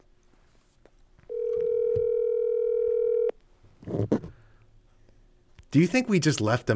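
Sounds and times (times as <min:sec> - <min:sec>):
telephone call ringing out as a steady electronic tone: 0:01.3 - 0:03.3
speech: 0:05.7 - 0:06.7.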